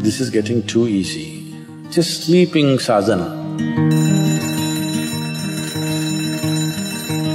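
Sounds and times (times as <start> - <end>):
speech: 0.1 - 1.4, 1.9 - 4.0
alarm bell ringing: 3.9 - 7.3.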